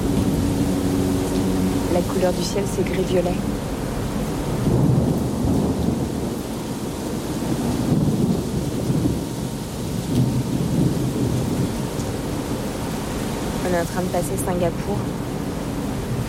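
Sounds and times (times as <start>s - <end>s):
heavy rain at sea off Singapore: 0.0s - 16.2s
thunder rolling and rumbling at sea: 0.0s - 16.2s
speech: 2.0s - 3.6s, 13.8s - 15.2s.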